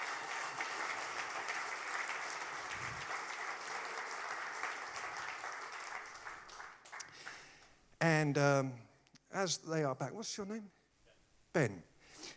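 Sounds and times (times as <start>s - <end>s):
sustained applause from a sizable audience for worship team: 0.0s - 7.6s
speech: 8.2s - 10.8s, 11.6s - 11.9s.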